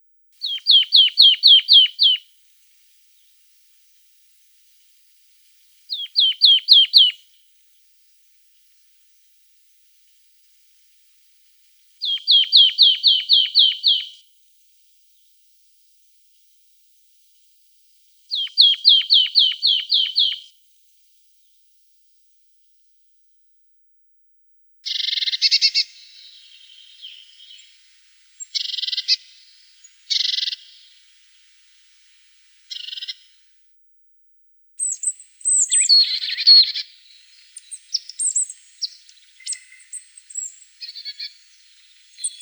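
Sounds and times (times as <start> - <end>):
marsh tit calling: 0.4 - 2.2, 5.9 - 7.2, 12.0 - 14.2, 18.3 - 20.5, 24.8 - 27.8, 28.4 - 31.0, 34.8 - 42.3.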